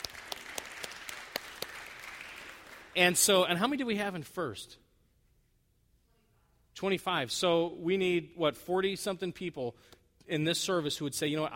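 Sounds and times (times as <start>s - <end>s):
congregation clapping during a church service: 0.0s - 3.6s
speech: 3.0s - 4.8s, 6.8s - 11.5s.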